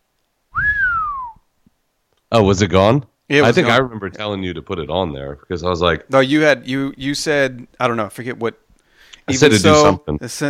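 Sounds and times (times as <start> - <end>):
human whistle on a music record: 0.6 - 1.4
speech: 2.3 - 8.6, 9.3 - 10.4.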